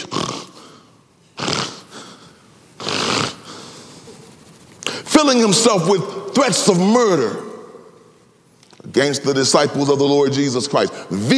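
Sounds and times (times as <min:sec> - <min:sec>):
man imitating angry snorting breaths: 0:00.0 - 0:04.2
speech: 0:05.2 - 0:07.5, 0:09.0 - 0:11.3.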